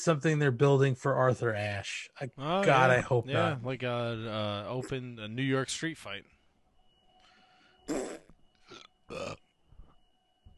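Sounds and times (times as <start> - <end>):
speech: 0.0 - 6.4, 7.9 - 8.2, 9.1 - 9.4
person burping: 7.9 - 9.5.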